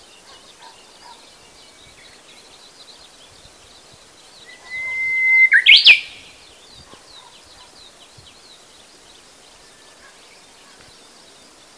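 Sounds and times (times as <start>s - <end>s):
Japanese bush warbler singing: 0.0s - 11.7s.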